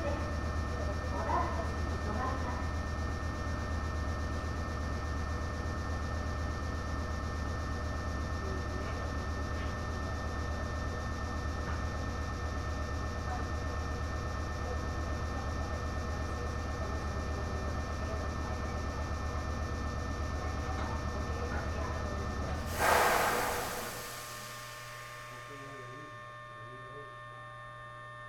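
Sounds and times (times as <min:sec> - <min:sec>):
stationary local train idling at a station platform: 0:00.0 - 0:27.1
faint mechanical whine: 0:22.6 - 0:26.2.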